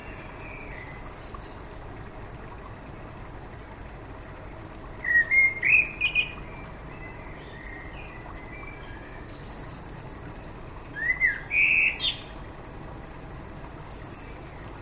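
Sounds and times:
common blackbird Turdus merula song: 0.0 - 1.8, 5.0 - 14.8.

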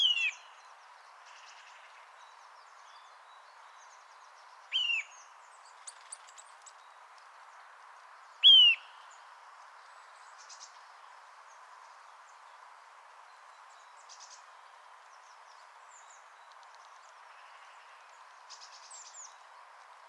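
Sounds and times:
Eurasian nuthatch giving loud clear whistled notes: 8.4 - 8.9.

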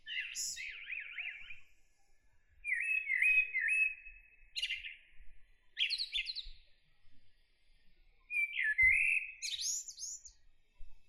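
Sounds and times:
common blackbird Turdus merula singing: 0.1 - 1.6, 2.6 - 5.0, 5.8 - 6.4, 8.3 - 10.4.

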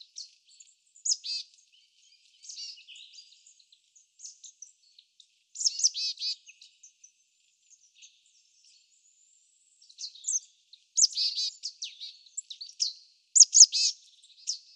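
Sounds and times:
marsh tit Poecile palustris calls: 1.0 - 1.5, 5.5 - 6.3, 10.9 - 14.6.

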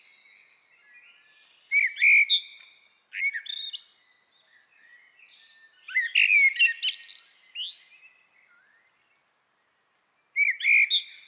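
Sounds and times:
Eurasian blackbird singing: 0.0 - 8.9.

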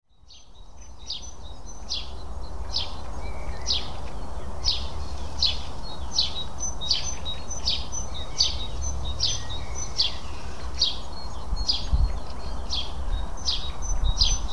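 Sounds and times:
House sparrow Passer domesticus chirping: 0.1 - 14.5.

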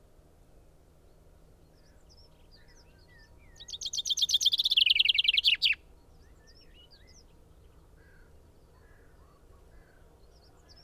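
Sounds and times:
common chaffinch Fringilla coelebs singing: 3.6 - 5.8.

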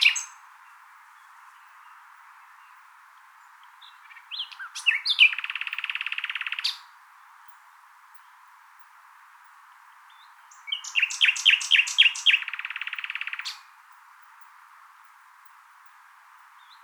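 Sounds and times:
common nightingale Luscinia megarhynchos singing: 0.0 - 6.9, 10.1 - 13.7.

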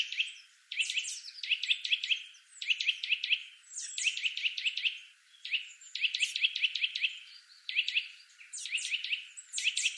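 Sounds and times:
Eurasian nuthatch Sitta europaea giving sharp piping whistled calls: 0.0 - 9.9.

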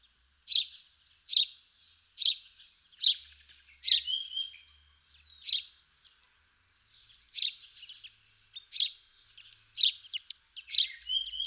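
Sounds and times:
house sparrow Passer domesticus chirping: 0.0 - 11.4
house sparrow whistle: 10.7 - 11.4.

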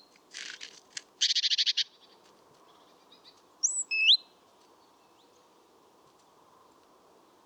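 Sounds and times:
Parus major great tit calls: 0.3 - 1.5.

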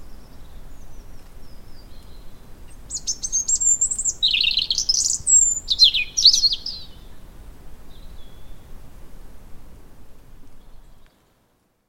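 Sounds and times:
European robin Erithacus rubecula singing: 0.0 - 8.7.

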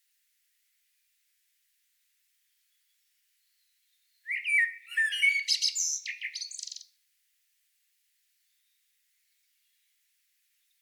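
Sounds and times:
common blackbird Turdus merula singing: 3.6 - 6.8.

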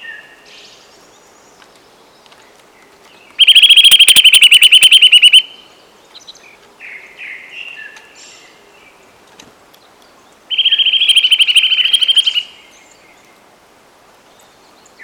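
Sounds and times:
soft bird calls: 0.0 - 9.1, 9.7 - 13.5
Eurasian nuthatch Sitta europaea trilling: 3.4 - 5.5, 10.5 - 12.5.

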